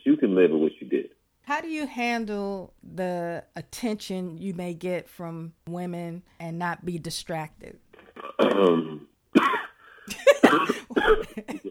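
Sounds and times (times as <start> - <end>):
speech: 0.4 - 7.8, 8.4 - 11.6
person clearing throat: 8.2 - 11.6
person coughing: 8.2 - 11.6.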